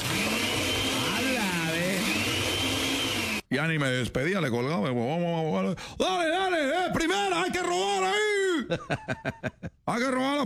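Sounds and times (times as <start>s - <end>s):
blender whirring at home: 0.0s - 3.5s
speech: 3.5s - 10.4s
laughter: 8.6s - 9.8s.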